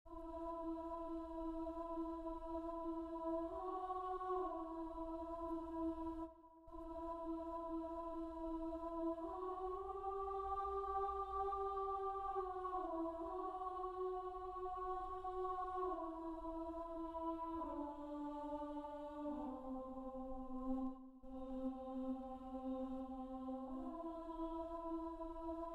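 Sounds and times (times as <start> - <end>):
alto voice singing: 0.1 - 25.7.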